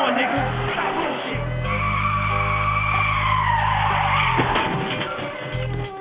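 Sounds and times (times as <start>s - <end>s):
car tires squealing in a skid: 0.0s - 5.9s
car ramming another car: 4.2s - 5.7s.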